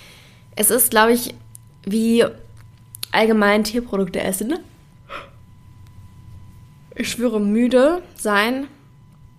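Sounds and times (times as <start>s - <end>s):
low steady hum: 0.0s - 9.3s
speech: 0.6s - 2.4s, 3.1s - 5.3s, 7.0s - 8.8s
person yawning: 5.1s - 5.4s.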